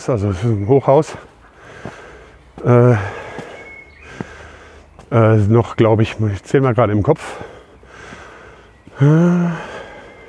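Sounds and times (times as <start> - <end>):
speech: 0.0 - 2.0, 2.6 - 3.2, 5.1 - 7.5, 9.0 - 9.7
man panting heavily while walking uphill: 1.1 - 5.1, 7.2 - 10.2.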